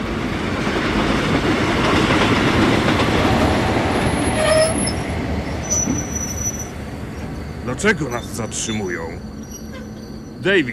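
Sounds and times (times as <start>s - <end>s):
train on the main western line rumbling on rails at Sears Crossing: 0.0s - 10.7s
train brake squeals: 4.1s - 5.0s, 5.6s - 10.7s
speech: 7.8s - 9.3s, 10.4s - 10.7s.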